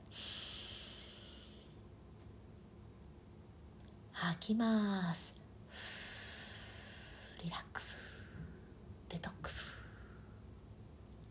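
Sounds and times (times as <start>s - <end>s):
deep inhale through the nose during a guided breathing exercise: 0.1s - 1.8s, 5.7s - 7.4s
speech: 4.2s - 5.3s.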